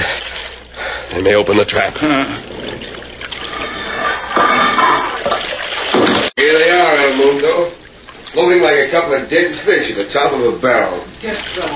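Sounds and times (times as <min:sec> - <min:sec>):
water pouring and rushing into a flooding trap chamber: 0:00.0 - 0:08.9
speech: 0:01.2 - 0:02.7, 0:06.4 - 0:11.7.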